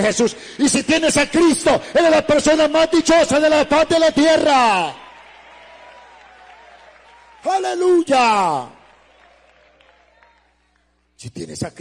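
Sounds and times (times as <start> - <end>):
speech: 0.0 - 5.0, 7.4 - 8.8, 11.2 - 11.7
congregation clapping during a church sermon: 2.0 - 11.0.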